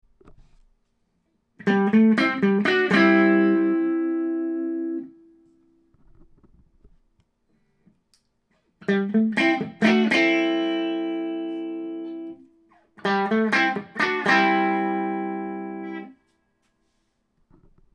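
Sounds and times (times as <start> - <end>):
Gibson Les Paul electric guitar, clean neck and bridge pickup mix: 1.6 - 5.3, 8.8 - 16.2.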